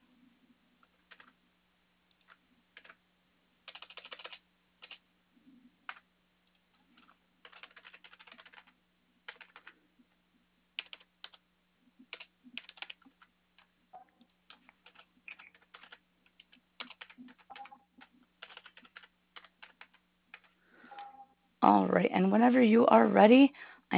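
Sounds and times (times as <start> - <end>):
low steady hum: 0.0 - 23.9
fingers typing on a computer keyboard: 0.9 - 1.4, 2.2 - 3.0, 3.7 - 5.0, 7.0 - 9.8, 10.8 - 11.4, 12.0 - 13.7, 14.5 - 20.6
speech: 21.6 - 23.9.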